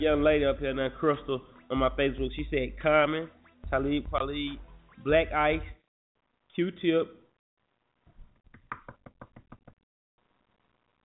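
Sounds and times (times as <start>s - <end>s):
speech: 0.0s - 5.8s, 6.6s - 7.2s
knocking on a microphone: 8.6s - 9.8s.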